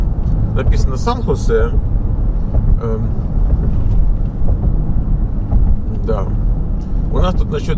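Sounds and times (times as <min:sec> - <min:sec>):
car cruising on a freeway with no traffic: 0:00.0 - 0:07.7
road and wind noise filling the car cabin: 0:00.0 - 0:07.7
speech: 0:00.6 - 0:01.9, 0:02.8 - 0:04.0, 0:06.1 - 0:06.4, 0:07.1 - 0:07.7.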